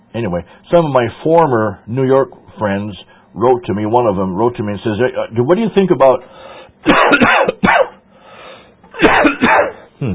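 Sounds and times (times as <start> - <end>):
speech: 0.2 - 7.9, 9.0 - 10.1
person coughing harshly: 6.8 - 8.0, 8.9 - 10.1.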